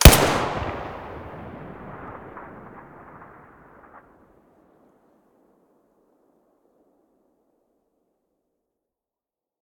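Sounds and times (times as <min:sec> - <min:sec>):
TT-33 pistol muzzle blast: 0:00.0 - 0:01.4.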